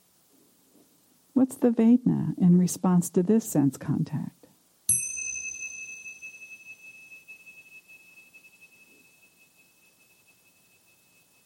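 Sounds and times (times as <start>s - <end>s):
speech: 1.4s - 4.4s
bell ringing: 4.9s - 11.4s.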